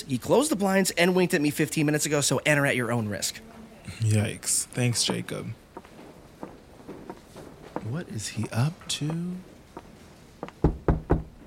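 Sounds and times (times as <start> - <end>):
speech: 0.0 - 5.6, 7.9 - 9.5
knocking on an office door: 10.4 - 11.4.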